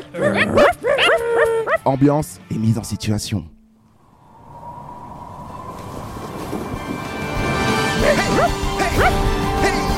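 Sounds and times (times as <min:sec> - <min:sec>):
sled dogs barking and yelping: 0:00.0 - 0:01.9, 0:07.1 - 0:09.8
speech: 0:00.1 - 0:00.7, 0:01.8 - 0:03.6
constant low rumbling hum: 0:03.8 - 0:08.6.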